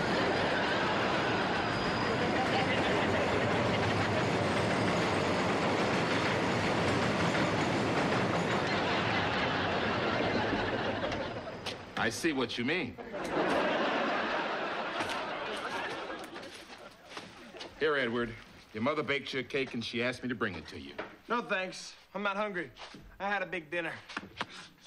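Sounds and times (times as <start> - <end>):
laughter: 0.0 - 5.1, 8.3 - 12.0, 12.7 - 17.8
elevated L train rumbling and clattering along tracks: 0.0 - 11.9
speech: 12.0 - 13.4, 18.0 - 24.8.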